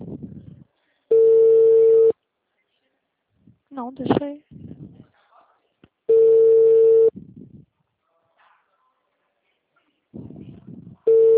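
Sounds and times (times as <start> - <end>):
ringback tone of a phone call about to forward to voicemail: 1.1 - 2.1, 6.1 - 7.1, 11.1 - 11.3
speech: 3.9 - 4.6.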